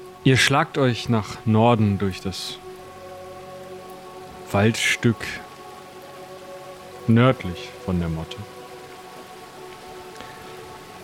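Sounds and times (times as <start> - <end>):
steady rain falling: 0.0 - 11.0
speech: 0.2 - 2.6, 4.5 - 5.4, 7.1 - 8.6.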